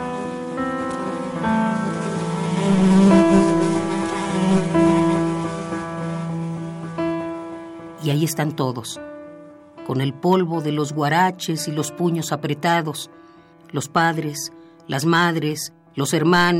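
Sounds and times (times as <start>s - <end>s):
flies buzzing: 0.0s - 8.0s
speech: 8.2s - 9.1s, 9.9s - 16.5s.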